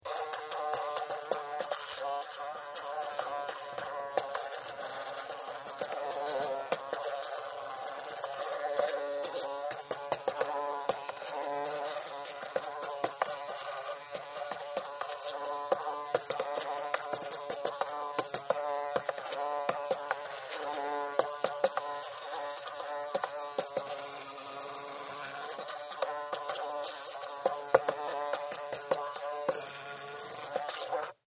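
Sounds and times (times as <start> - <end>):
fly trapped inside a container buzzing its wings: 0.0 - 31.2.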